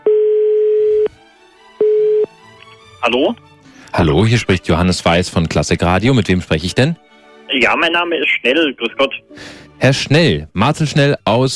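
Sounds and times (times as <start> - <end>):
telephone ringback tone on a call: 0.0 - 1.1, 1.8 - 2.3
speech: 3.0 - 11.5.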